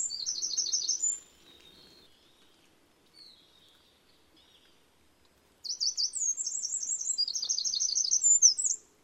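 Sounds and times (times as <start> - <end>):
Eurasian wren singing high-pitched trilled and rattling notes: 0.0 - 4.8, 5.6 - 8.9.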